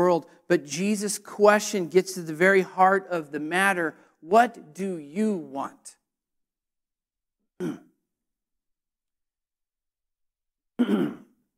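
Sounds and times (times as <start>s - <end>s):
speech: 0.0s - 6.0s, 7.6s - 7.9s, 10.8s - 11.2s
coughing and throat clearing: 7.6s - 8.0s, 10.8s - 11.5s.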